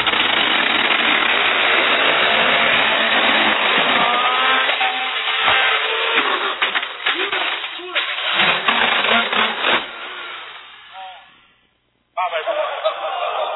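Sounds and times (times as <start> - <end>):
electric chainsaw cutting into wooden monitor: 0.0 - 6.6, 8.2 - 11.0
laughter: 12.2 - 13.5.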